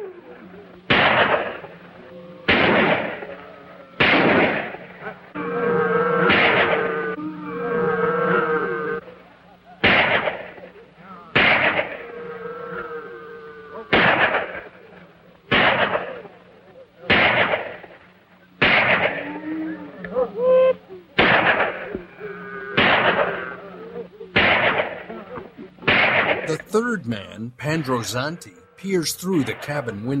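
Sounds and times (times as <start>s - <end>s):
low steady hum: 0.0s - 30.1s
gunfire from two concealed men shooting at a cabin: 0.9s - 1.6s, 2.5s - 3.2s, 4.0s - 4.8s, 6.3s - 6.8s, 9.8s - 10.6s, 11.4s - 12.0s, 13.9s - 14.6s, 15.5s - 16.2s, 17.1s - 17.9s, 18.6s - 19.2s, 21.2s - 21.8s, 22.8s - 23.4s, 24.4s - 25.1s, 25.9s - 26.5s
speech: 26.9s - 30.1s.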